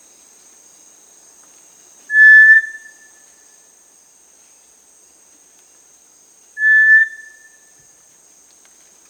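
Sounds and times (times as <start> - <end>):
Cinereous Tinamou giving a pure whistle in the Amazon region of Peru: 6.6 - 7.4.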